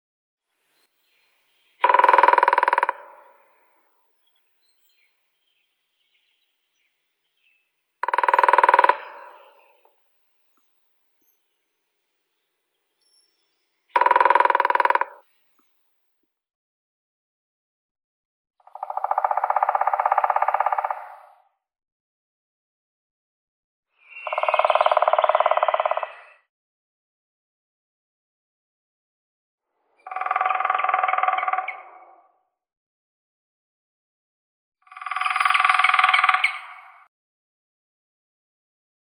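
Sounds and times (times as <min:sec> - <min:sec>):
grey-headed woodpecker Picus canus: 0:01.8 - 0:05.0, 0:08.0 - 0:09.9, 0:13.9 - 0:15.8, 0:18.8 - 0:21.3, 0:24.1 - 0:26.4, 0:30.1 - 0:32.0, 0:34.9 - 0:37.0.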